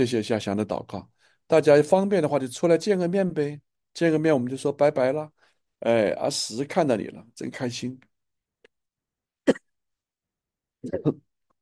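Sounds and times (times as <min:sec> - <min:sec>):
speech: 0:00.0 - 0:08.1, 0:10.8 - 0:11.3
short coughs: 0:09.4 - 0:09.8, 0:10.8 - 0:11.3.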